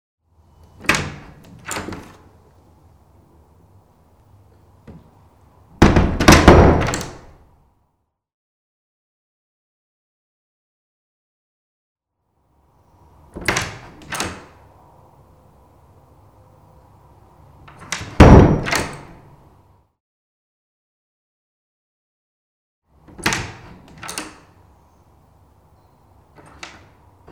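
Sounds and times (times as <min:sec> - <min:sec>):
wooden door: 0:00.7 - 0:02.4, 0:04.8 - 0:07.5, 0:13.3 - 0:14.7, 0:17.6 - 0:19.4, 0:23.0 - 0:24.7, 0:26.2 - 0:27.3.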